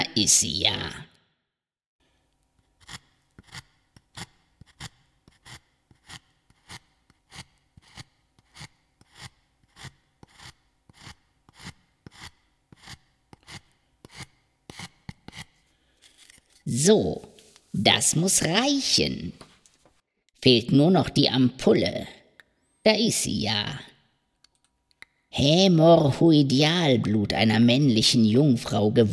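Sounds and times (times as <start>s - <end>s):
speech: 0.2s - 1.1s, 16.8s - 19.5s, 20.4s - 22.2s, 22.8s - 23.9s, 25.4s - 29.1s
deer antler being grated by hand: 2.5s - 18.4s.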